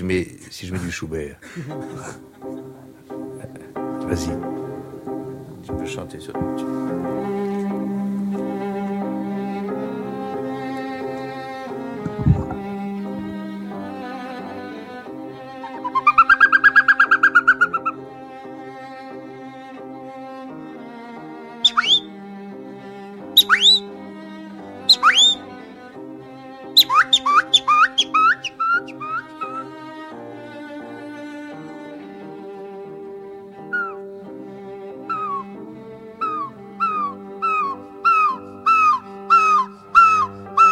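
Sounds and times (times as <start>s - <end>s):
speech: 0.0s - 2.7s, 4.1s - 4.6s, 5.7s - 7.4s
laughter: 0.7s - 3.6s
orchestral classical music: 1.6s - 40.7s
person imitating birdsong with whistled chirps and trills: 21.7s - 22.1s, 23.4s - 23.9s, 24.9s - 25.4s, 26.8s - 29.7s, 36.2s - 40.7s.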